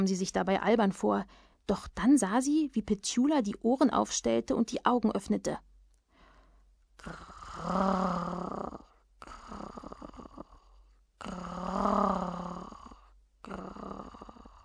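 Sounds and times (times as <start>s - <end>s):
speech: 0.0s - 5.7s, 7.0s - 8.8s
human voice growling in imitation of a dog: 7.0s - 14.6s.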